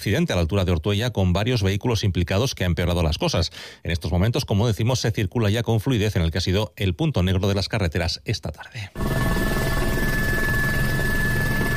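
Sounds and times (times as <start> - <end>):
speech: 0.0 - 9.6
helicopter cabin noise with rotor chop and whine while firefighting: 9.0 - 11.7.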